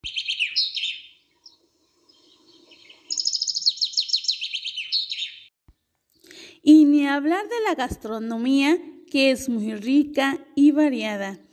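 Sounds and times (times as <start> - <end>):
birds chirping in a town garden: 0.0 - 5.5
speech: 6.6 - 11.5.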